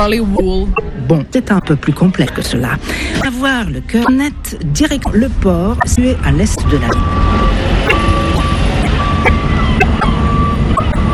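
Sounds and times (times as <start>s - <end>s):
speech: 0.0s - 7.6s
heavy container truck engines rumbling at a port: 0.0s - 11.1s
beeping tones: 0.3s - 1.7s, 4.0s - 4.2s, 5.8s - 11.1s.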